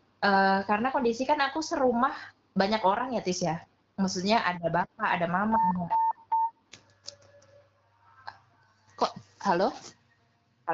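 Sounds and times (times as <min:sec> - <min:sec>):
speech: 0:00.2 - 0:06.0, 0:09.0 - 0:10.0
short electronic mobile phone beeps: 0:05.5 - 0:06.6.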